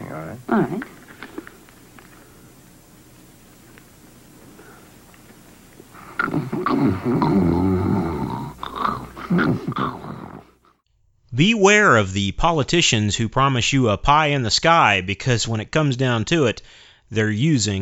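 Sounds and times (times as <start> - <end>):
speech: 0.1 - 1.0, 7.0 - 7.6, 11.4 - 17.8
loud human snoring: 5.9 - 10.7.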